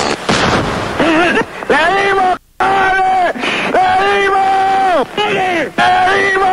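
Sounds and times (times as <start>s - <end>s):
weapon shot fired at target: 0.0s - 1.2s
raised voices: 1.0s - 6.5s.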